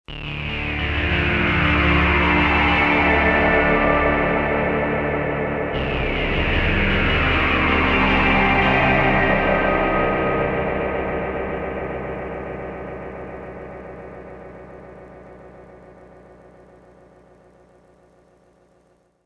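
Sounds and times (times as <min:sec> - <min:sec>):
AMS DMX 15-80S delay effect: 0:00.1 - 0:16.6.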